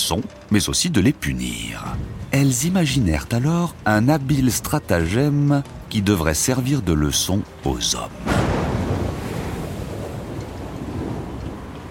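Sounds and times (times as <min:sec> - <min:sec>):
speech: 0:00.1 - 0:08.5
rough stormy sea waves crashing: 0:01.3 - 0:11.8
strong gusting wind: 0:01.7 - 0:04.5, 0:08.2 - 0:11.8.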